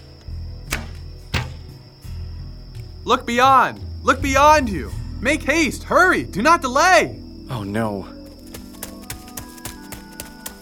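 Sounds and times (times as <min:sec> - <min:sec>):
arrows being shot: 0:00.7 - 0:01.8
speech: 0:03.0 - 0:08.2.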